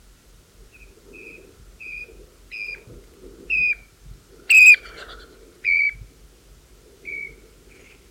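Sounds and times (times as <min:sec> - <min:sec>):
rufous-chested dotterel calling: 0:04.5 - 0:04.8.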